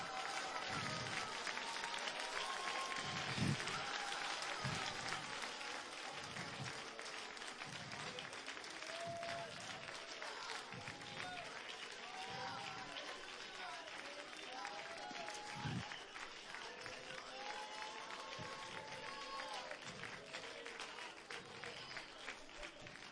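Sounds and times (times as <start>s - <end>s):
audience clapping hands: 0.0s - 23.1s.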